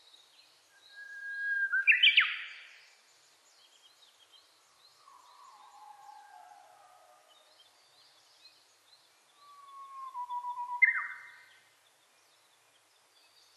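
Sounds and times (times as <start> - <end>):
Japanese bush warbler song: 0.0 - 13.5
soft low background sounds: 2.5 - 13.5.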